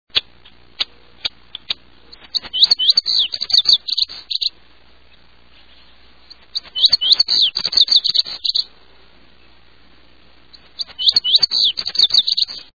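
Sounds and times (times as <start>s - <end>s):
Lazuli bunting: 1.2s - 4.6s, 5.7s - 8.7s, 10.5s - 12.7s.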